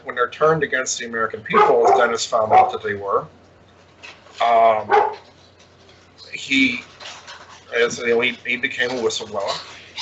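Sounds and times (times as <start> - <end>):
speech: 0.2 - 3.4, 4.0 - 5.2, 6.4 - 6.9, 7.7 - 9.7
dog barking: 1.5 - 2.9, 4.9 - 5.3.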